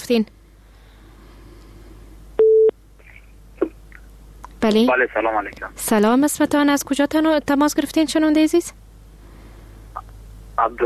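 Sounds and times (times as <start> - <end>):
speech: 0.1 - 0.4, 4.6 - 8.8, 10.6 - 10.8
telephone tone after a call is cut off: 2.4 - 2.7.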